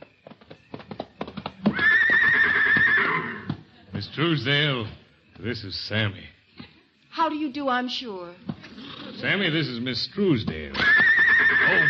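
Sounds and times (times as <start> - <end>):
horse hoof clops on a hard surface: 0.0 - 1.8, 10.3 - 11.0
loud quavering horse whinny: 1.7 - 3.5, 8.6 - 9.4, 10.7 - 11.8
speech: 4.2 - 6.4, 7.2 - 8.5, 9.2 - 11.0, 11.6 - 11.8.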